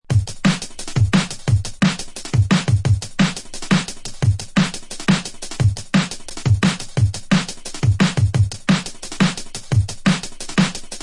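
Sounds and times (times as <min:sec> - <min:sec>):
kick drum: 0:00.1 - 0:03.3, 0:05.6 - 0:08.8
hi-hats: 0:00.1 - 0:11.0
snare drum: 0:00.1 - 0:11.0.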